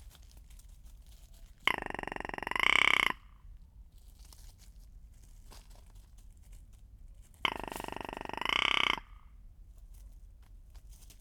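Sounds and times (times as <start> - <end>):
rock ptarmigan rattling croak: 1.6 - 3.4, 7.4 - 9.3.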